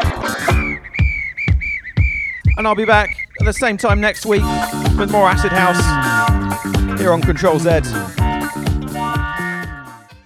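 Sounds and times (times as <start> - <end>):
steady thumping dance beat: 0.0 - 9.8
shrill whistle blasts with a brief warble: 0.1 - 8.6
speech: 2.6 - 8.2.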